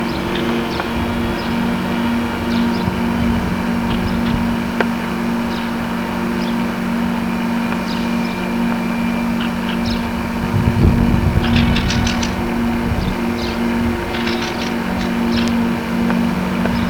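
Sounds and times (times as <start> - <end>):
birds: 0.0 - 16.8.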